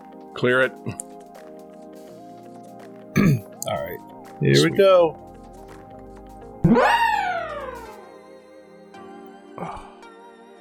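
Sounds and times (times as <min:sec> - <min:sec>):
speech: 0:00.4 - 0:01.1, 0:03.9 - 0:05.2
electronic howl of a robot dog from a retro action video game: 0:06.6 - 0:07.9.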